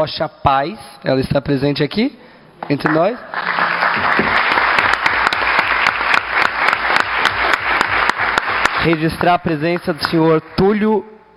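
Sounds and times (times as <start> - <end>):
speech: 0.0 - 3.6, 8.8 - 11.2
audience applause: 2.9 - 9.9.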